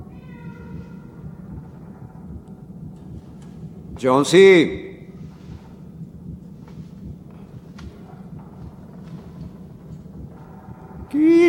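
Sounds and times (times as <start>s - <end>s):
cat meowing: 0.0s - 1.3s
low rumbling noise: 0.0s - 11.4s
speech: 4.0s - 4.9s.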